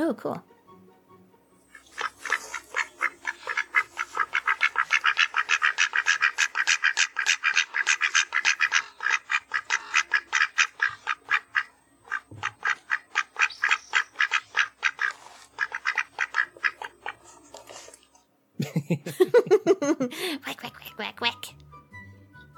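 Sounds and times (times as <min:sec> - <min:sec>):
speech: 0:00.1 - 0:00.5, 0:18.9 - 0:19.2
two ducks quacking back and forth: 0:01.7 - 0:18.0
laughter: 0:18.6 - 0:20.4.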